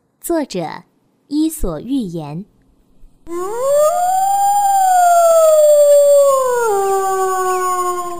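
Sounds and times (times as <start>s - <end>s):
speech: 0.2s - 2.5s, 3.2s - 4.4s
wolf howling: 3.3s - 8.1s.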